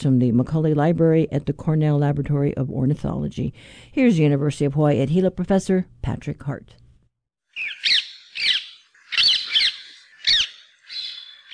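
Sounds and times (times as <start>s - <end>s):
speech: 0.0s - 6.8s
introduced rose-ringed parakeet squawking: 7.6s - 11.5s.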